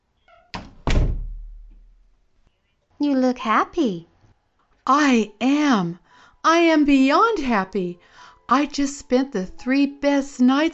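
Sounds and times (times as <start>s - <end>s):
door shutting with a heavy slam: 0.3s - 2.0s
speech: 3.0s - 4.1s, 4.9s - 10.7s.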